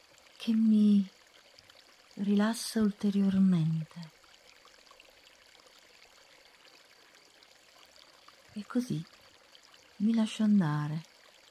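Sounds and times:
gently flowing stream water burbling: 0.0s - 11.4s
speech: 0.4s - 1.2s, 2.2s - 4.2s, 8.6s - 9.2s, 10.0s - 11.1s.

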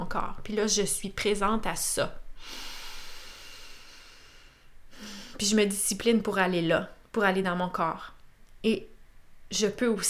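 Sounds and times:
speech: 0.1s - 2.7s, 5.4s - 8.9s, 9.5s - 10.0s
deep breathing: 2.4s - 5.4s.

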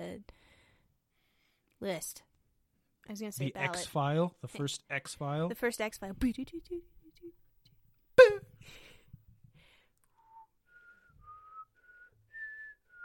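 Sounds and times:
speech: 1.8s - 2.3s, 3.1s - 7.4s
person whistling a short rising melody: 10.2s - 13.0s.

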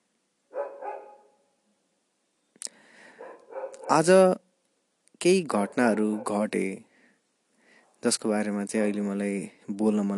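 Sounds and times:
dog barking outside: 0.5s - 1.4s, 3.2s - 4.1s, 5.6s - 6.4s
speech: 3.9s - 4.4s, 5.2s - 6.9s, 8.0s - 10.1s.

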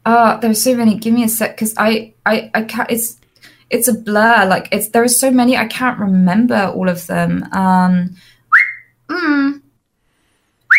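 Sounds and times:
speech: 0.1s - 8.4s, 9.1s - 9.6s
whistling vocal tic: 8.5s - 9.4s.

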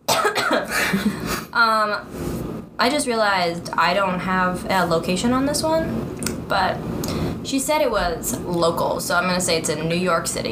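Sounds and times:
person clearing throat: 0.1s - 1.0s
person coughing: 0.1s - 1.5s
speech: 0.9s - 10.5s.

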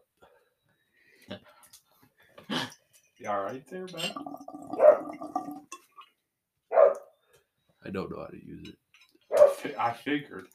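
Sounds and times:
speech: 3.2s - 5.6s, 7.9s - 8.9s, 9.6s - 10.5s
dog barking: 4.8s - 5.1s, 6.7s - 7.1s, 9.3s - 9.7s.

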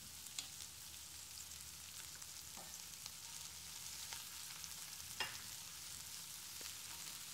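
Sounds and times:
garlic and onion frying in a pan with leftover juices: 0.0s - 7.3s.

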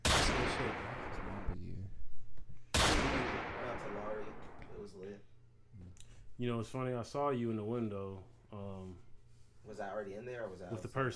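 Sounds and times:
rapid gunfire sound effects: 0.0s - 1.5s, 2.8s - 4.6s
sharp blast: 0.0s - 1.6s, 2.7s - 4.9s
speech: 4.9s - 11.1s.

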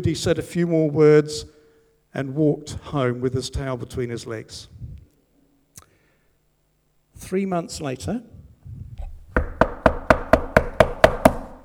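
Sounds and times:
speech: 0.0s - 4.8s, 7.2s - 8.4s
man pounding on a wooden house door: 9.0s - 11.6s.

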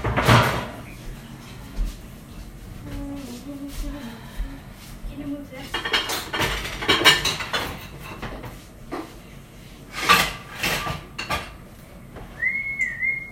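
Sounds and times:
kitchen items knocking and clattering on a cutting board: 0.0s - 1.4s, 5.4s - 9.2s, 9.8s - 11.7s
person whistling a tune: 12.4s - 13.3s.

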